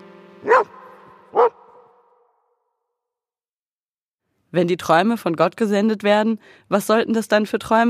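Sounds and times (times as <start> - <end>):
dog barking: 0.4 - 2.1
speech: 4.5 - 7.8.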